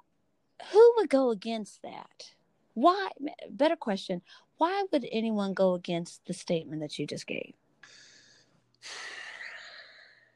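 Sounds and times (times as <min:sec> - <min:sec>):
speech: 0:01.0 - 0:08.0, 0:08.8 - 0:09.2
deep breath: 0:07.8 - 0:10.3.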